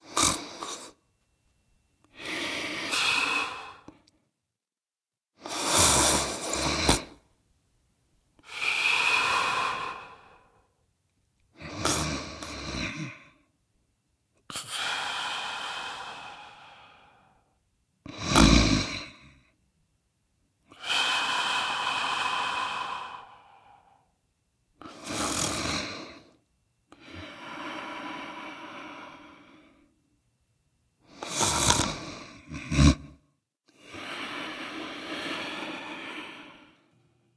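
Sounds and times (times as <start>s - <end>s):
person snoring: 0.0s - 1.0s, 2.1s - 4.1s, 5.4s - 7.2s, 8.4s - 10.7s, 11.6s - 13.4s, 14.5s - 17.5s, 18.1s - 19.4s, 20.7s - 24.1s, 24.8s - 29.9s, 31.1s - 37.2s.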